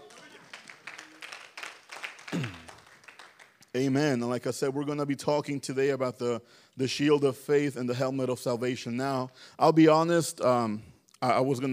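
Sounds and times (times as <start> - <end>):
seated audience clapping: 0.0 - 4.1
speech: 3.8 - 11.7.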